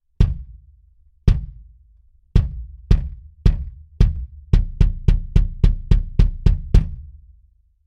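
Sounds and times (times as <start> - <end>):
flat bass drum hit: 0.2 - 0.7, 1.3 - 1.8, 2.4 - 7.1.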